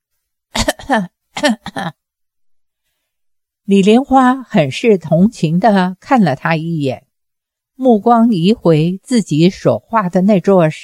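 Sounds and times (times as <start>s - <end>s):
harsh throaty hacking coughing fit: 0.5s - 2.0s
speech: 0.9s - 2.0s, 3.7s - 7.0s, 7.8s - 10.8s.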